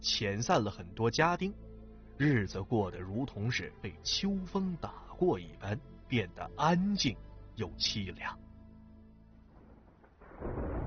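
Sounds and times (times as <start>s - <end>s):
speech: 0.0s - 8.4s
thunder rolling: 9.5s - 10.8s
heavy pouring rain: 10.2s - 10.8s.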